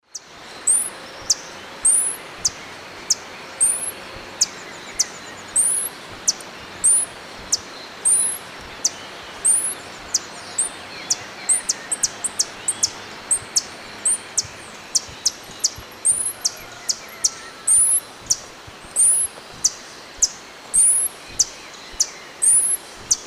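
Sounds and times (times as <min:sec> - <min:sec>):
Tangara chilensis dawn song in the Eastern Lowlands of South America: 0:00.0 - 0:23.2.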